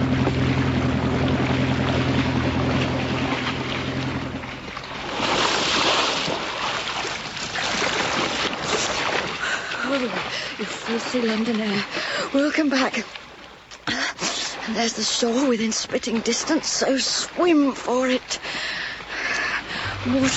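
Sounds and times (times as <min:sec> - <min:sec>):
motor launch engine droning while turning around on water: 0:00.0 - 0:10.8, 0:18.3 - 0:20.3
rushing wash of water and wind: 0:00.0 - 0:20.3
speech: 0:10.9 - 0:13.2, 0:14.7 - 0:18.8, 0:20.0 - 0:20.3.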